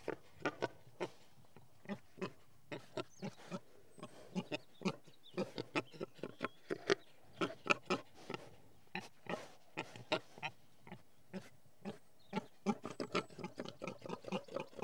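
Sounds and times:
pigs grunting and snorting in a field: 0:00.0 - 0:14.8.

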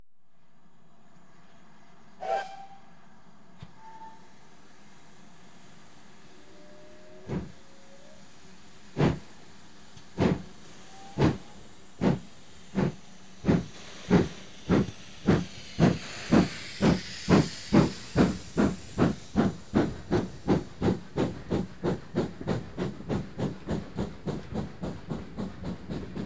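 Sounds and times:
train departing: 0:02.2 - 0:26.2.

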